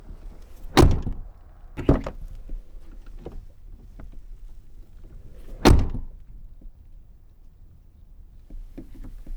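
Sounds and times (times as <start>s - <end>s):
Jeep Grand Cherokee WJ 4.7 exterior door opening and closing: 0.0s - 6.2s.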